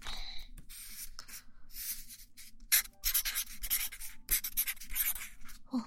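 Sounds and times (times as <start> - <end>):
small double-ended marker pen writing on paper: 1.8 - 5.6.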